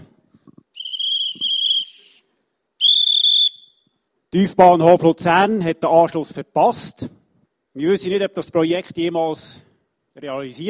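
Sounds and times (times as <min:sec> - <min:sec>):
shrill train conductor's departure whistle: 0:00.8 - 0:03.9
speech: 0:04.3 - 0:07.2, 0:07.8 - 0:10.6.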